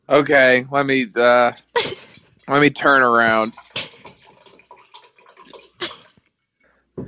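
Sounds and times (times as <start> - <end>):
speech: 0.1 - 1.9, 2.5 - 3.7
water rushing and splashing: 1.7 - 6.2.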